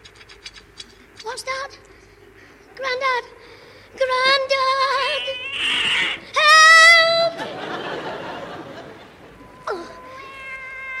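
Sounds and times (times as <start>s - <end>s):
faint hiss: 0.0s - 10.9s
speech: 1.4s - 1.9s, 2.8s - 6.3s
cat meowing: 5.0s - 6.2s, 9.7s - 10.9s
laughter: 7.2s - 9.5s.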